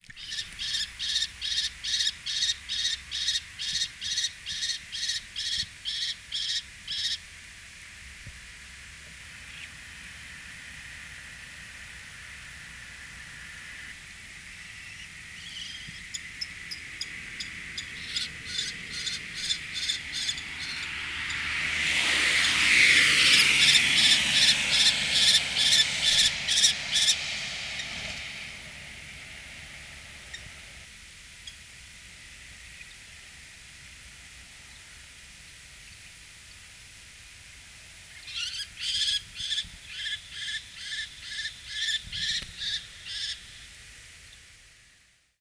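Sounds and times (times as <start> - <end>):
female kestrel calling the male in Niigata: 0.1 - 7.2, 14.5 - 28.2, 38.2 - 43.7.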